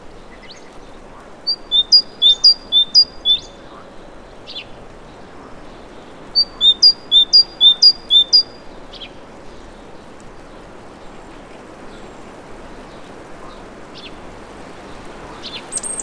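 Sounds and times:
great tit calling with sharp high two-note phrases: 1.5 - 3.7, 6.2 - 9.0, 15.4 - 16.0.

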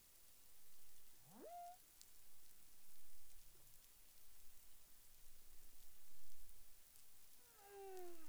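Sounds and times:
humpback whale calls in the Caribbean: 1.3 - 1.8, 7.4 - 8.2.

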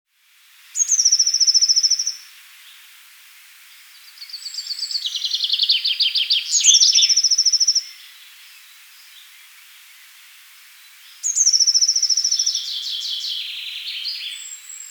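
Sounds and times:
Eurasian blue tit Cyanistes caeruleus calling: 0.8 - 2.2, 4.2 - 8.0, 11.2 - 14.8.

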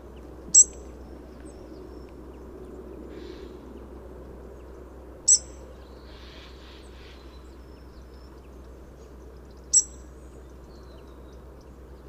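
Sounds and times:
soft low hum: 0.0 - 12.0
European robin Erithacus rubecula high piercing calls: 0.5 - 2.1, 5.3 - 8.0, 9.5 - 11.4.

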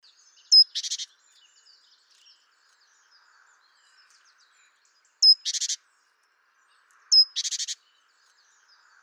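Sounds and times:
great tit Parus major calls with thin high whistle and buzzy churr: 0.5 - 1.1, 5.2 - 5.8, 7.1 - 7.8.

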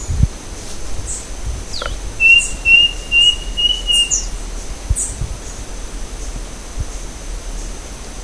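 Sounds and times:
constant hiss: 0.0 - 8.2
faint bird chirps: 1.1 - 4.4
thin high level bird trill: 1.7 - 4.4.

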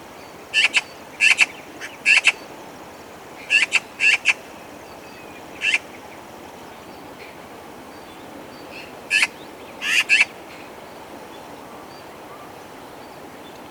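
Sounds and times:
faint background hiss: 0.0 - 13.6
Eurasian magpie Pica pica rough rattling chak calls: 0.6 - 2.4, 9.1 - 10.3.

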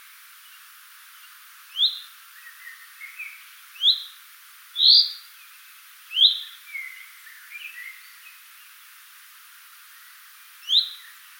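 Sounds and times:
common chaffinch Fringilla coelebs calling: 1.7 - 4.2, 4.8 - 5.3, 6.1 - 8.4, 10.6 - 11.2.

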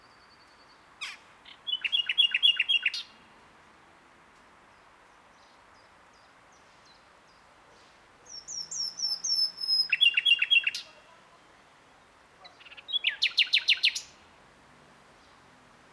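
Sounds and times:
common nightingale Luscinia megarhynchos singing: 0.0 - 3.2, 8.3 - 11.8, 12.4 - 14.3.

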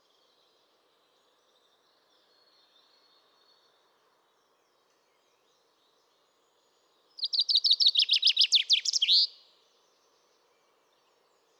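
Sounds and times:
Common chaffinch singing, Fringilla coelebs: 7.2 - 9.3.

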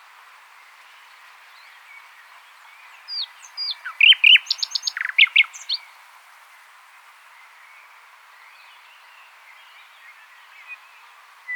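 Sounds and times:
common nightingale Luscinia megarhynchos song: 1.0 - 6.0, 8.5 - 11.5.

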